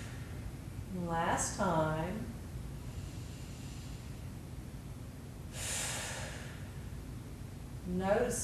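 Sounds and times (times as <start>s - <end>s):
deep breath in through the nose and out during a guided relaxation exercise: 0.0s - 0.4s, 2.8s - 4.3s, 5.5s - 7.0s
hiss: 0.0s - 8.4s
speech: 0.9s - 2.4s, 7.9s - 8.4s.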